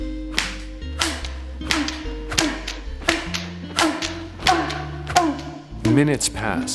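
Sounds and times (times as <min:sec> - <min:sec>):
leather whip lashing against skin: 0:00.3 - 0:05.6
speech: 0:06.0 - 0:06.7.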